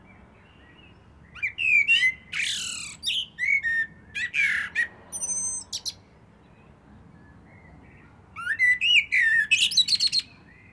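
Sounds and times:
common blackbird singing: 0:00.4 - 0:06.0, 0:08.4 - 0:10.7.

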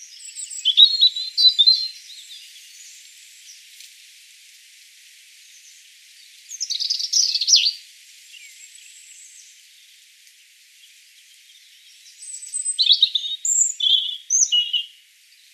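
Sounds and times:
European robin Erithacus rubecula singing: 0:00.0 - 0:03.9, 0:05.6 - 0:09.9, 0:10.8 - 0:15.5
soft hiss: 0:02.0 - 0:12.6.

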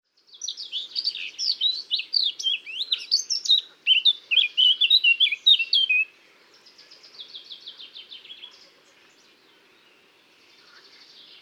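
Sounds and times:
Eurasian blackcap Sylvia atricapilla singing: 0:00.2 - 0:06.1.

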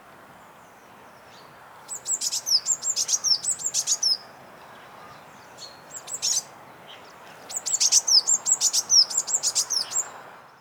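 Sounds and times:
steady low background hiss: 0:00.0 - 0:10.5
Eurasian blue tit Cyanistes caeruleus calling: 0:01.9 - 0:04.2, 0:07.5 - 0:10.1.

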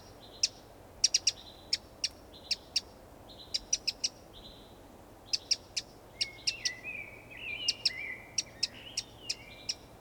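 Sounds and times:
Eurasian wren-type calls: 0:00.0 - 0:02.9, 0:03.5 - 0:04.2, 0:05.3 - 0:06.8, 0:07.4 - 0:09.9.

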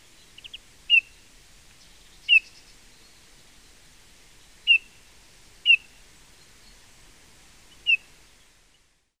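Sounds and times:
faint hiss: 0:00.0 - 0:09.1
Eurasian bullfinch Pyrrhula pyrrhula calling with brief mellow piped notes: 0:00.4 - 0:01.2, 0:01.8 - 0:02.7, 0:04.6 - 0:05.0, 0:05.6 - 0:06.0, 0:07.7 - 0:08.1.

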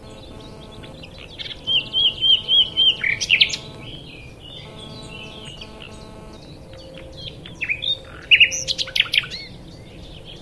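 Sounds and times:
steady hum: 0:00.0 - 0:06.6
common nightingale Luscinia megarhynchos singing whistles and rattles: 0:00.0 - 0:09.5.

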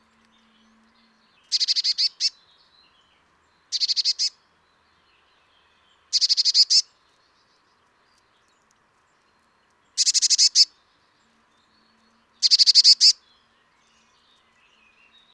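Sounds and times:
Eurasian blue tit Cyanistes caeruleus scolding calls: 0:01.5 - 0:02.3, 0:03.7 - 0:04.3, 0:06.1 - 0:06.8, 0:10.0 - 0:10.7, 0:12.4 - 0:13.2.

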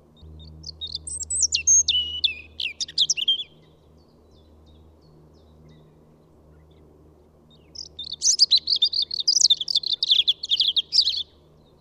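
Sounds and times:
low background hum: 0:00.0 - 0:11.7
European robin Erithacus rubecula singing high thin whistles and trills: 0:00.7 - 0:03.6, 0:07.8 - 0:11.3.

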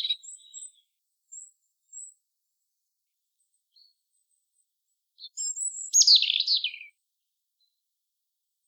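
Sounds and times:
European robin Erithacus rubecula singing: 0:00.0 - 0:02.2, 0:05.2 - 0:07.0.

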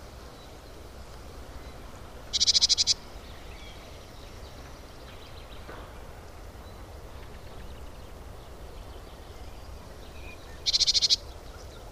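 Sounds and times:
faint hiss: 0:00.0 - 0:11.9
great tit Parus major call as brief dry buzzy rattles: 0:02.3 - 0:03.0, 0:10.6 - 0:11.2.

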